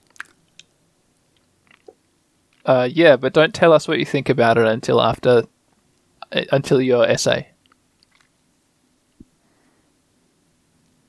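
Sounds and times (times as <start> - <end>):
mouth sounds of someone tasting banana-scented powder: 0.1 - 0.7, 1.6 - 2.0, 7.6 - 8.3
speech: 2.7 - 5.5, 6.3 - 7.5.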